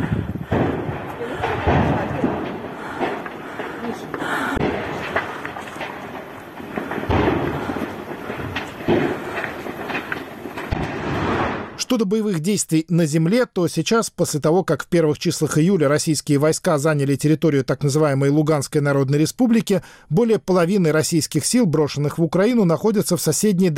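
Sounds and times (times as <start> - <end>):
secondary ammunition explosions booming and crackling: 0.0 - 11.8
speech: 11.9 - 23.7.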